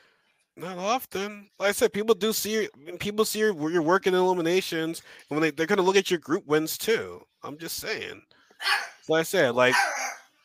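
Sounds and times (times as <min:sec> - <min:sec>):
speech: 0:00.6 - 0:10.1
dog barking with a strained howling pitch: 0:08.6 - 0:09.0, 0:09.7 - 0:10.3.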